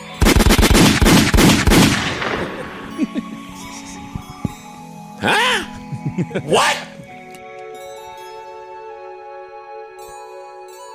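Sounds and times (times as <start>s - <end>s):
gunshot sound effects: 0.2s - 3.0s
laughter: 2.8s - 4.5s, 5.2s - 7.1s
speech: 5.2s - 6.8s.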